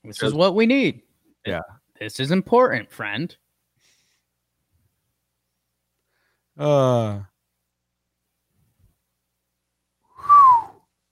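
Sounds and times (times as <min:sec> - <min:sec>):
speech: 0:00.1 - 0:03.4, 0:06.6 - 0:07.3
person whistling a short downward-gliding note: 0:10.1 - 0:10.9.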